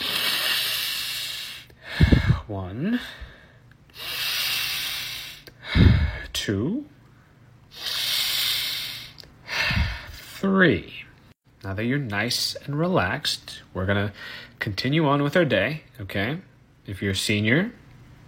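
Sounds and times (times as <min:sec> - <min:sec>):
deep breaths: 0:00.0 - 0:06.4, 0:07.7 - 0:10.4, 0:14.1 - 0:14.6
speech: 0:02.5 - 0:03.2, 0:05.8 - 0:06.9, 0:10.4 - 0:11.0, 0:11.6 - 0:17.8.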